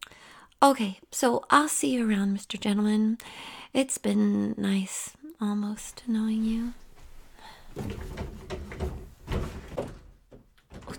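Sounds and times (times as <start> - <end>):
speech: 0.6 - 6.8, 7.8 - 8.4
locked door being rattled and yanked: 7.7 - 10.9.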